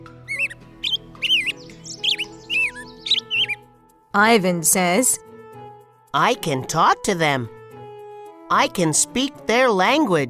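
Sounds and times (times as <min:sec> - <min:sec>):
birds chirping at a window: 0:00.0 - 0:03.8
speech: 0:04.2 - 0:05.3, 0:06.1 - 0:07.6, 0:08.5 - 0:10.2.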